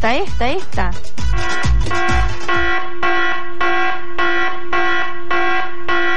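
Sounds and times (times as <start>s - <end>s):
speech: 0.0s - 3.0s
loud electronic alarm with harsh buzzy tone: 1.3s - 6.1s.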